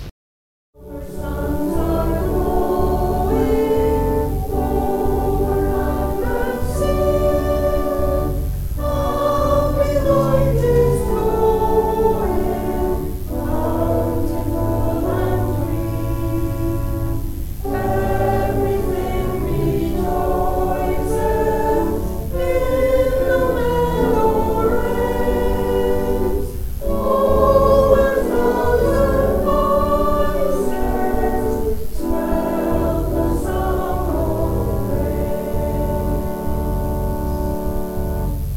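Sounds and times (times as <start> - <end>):
choir singing an introit: 0.8 - 38.4.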